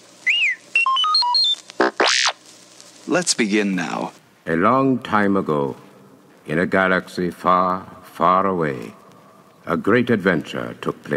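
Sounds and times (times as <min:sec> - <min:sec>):
robot droid beeping chirp used as a page-turn cue: 0:00.2 - 0:02.4
speech: 0:03.1 - 0:05.9, 0:06.5 - 0:09.0, 0:09.6 - 0:11.1.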